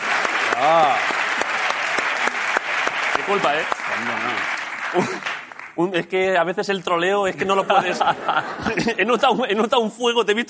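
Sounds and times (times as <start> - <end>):
crowd applauding: 0.0 - 6.0
speech: 0.6 - 1.2, 3.3 - 10.4
laughter: 4.9 - 5.3, 7.3 - 9.5.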